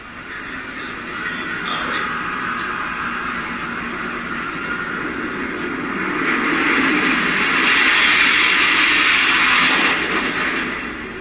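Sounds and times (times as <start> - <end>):
jet airliner engine roar: 0.0 - 11.2
explosion of jet airliner striking tower: 4.9 - 11.2.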